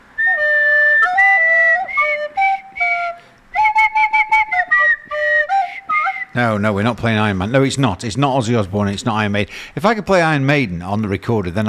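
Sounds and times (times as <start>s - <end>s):
person whistling a rock riff: 0.2s - 6.4s
speech: 6.4s - 11.6s.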